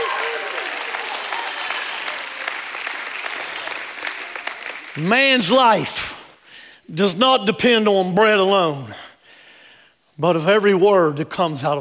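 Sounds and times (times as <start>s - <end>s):
audience shouting praise: 0.0s - 2.3s, 4.4s - 6.2s
audience applause: 0.0s - 6.0s
speech: 5.0s - 6.1s, 6.9s - 9.1s, 10.2s - 11.7s.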